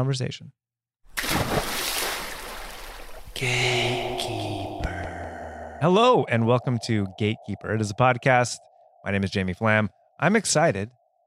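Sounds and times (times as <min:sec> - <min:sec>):
speech: 0:00.0 - 0:00.6, 0:03.4 - 0:04.5, 0:05.8 - 0:11.0
water splashing sound effect: 0:01.1 - 0:03.4
steady tone: 0:03.4 - 0:11.2.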